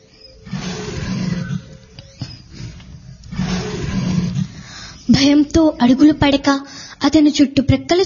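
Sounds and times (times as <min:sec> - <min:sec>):
lion roaring in a forest: 0:00.4 - 0:05.1
speech: 0:05.2 - 0:08.0.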